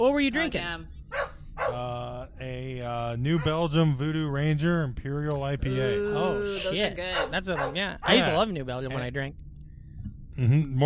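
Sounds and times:
speech: 0:00.0 - 0:01.0, 0:01.7 - 0:09.5, 0:10.4 - 0:10.8
dog barking: 0:01.1 - 0:01.8, 0:03.4 - 0:03.6, 0:07.1 - 0:08.3.

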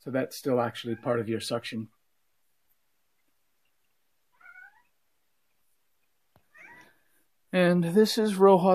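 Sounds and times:
speech: 0:00.0 - 0:02.0, 0:07.5 - 0:08.7
cat meowing: 0:04.3 - 0:05.0, 0:06.5 - 0:06.9.

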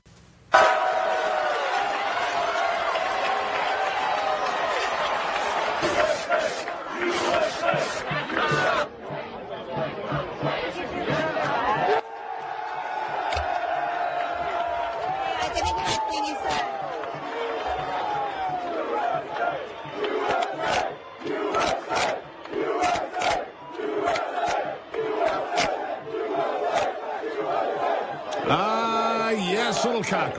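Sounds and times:
large crowd cheering and shouting at a flag raising at UNC Chapel Hill: 0:00.5 - 0:30.3
bursts of clapping from a crowd: 0:01.3 - 0:08.8, 0:10.4 - 0:27.0.

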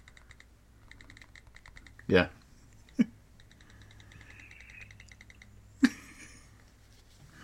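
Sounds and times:
computer keyboard typing: 0:00.0 - 0:02.1, 0:02.7 - 0:05.6
speech: 0:02.1 - 0:02.4.

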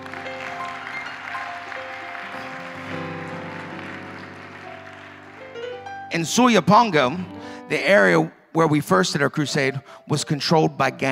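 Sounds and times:
audience clapping: 0:00.0 - 0:06.2
instruments playing sustained musical tones: 0:00.0 - 0:08.2
speech: 0:06.1 - 0:11.1.

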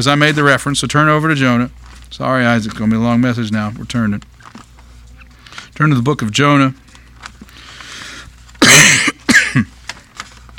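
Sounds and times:
speech: 0:00.0 - 0:04.3, 0:05.8 - 0:06.8
person coughing: 0:08.6 - 0:09.8.

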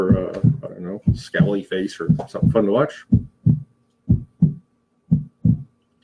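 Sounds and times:
speech: 0:00.0 - 0:03.2
heartbeat thumping in lub-dub pairs: 0:00.0 - 0:05.7.

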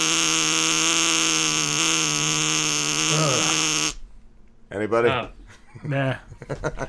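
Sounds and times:
brown note low-frequency buzzing tone with harsh overtones: 0:00.0 - 0:04.0
speech: 0:04.8 - 0:06.8
laughter: 0:05.5 - 0:06.8.

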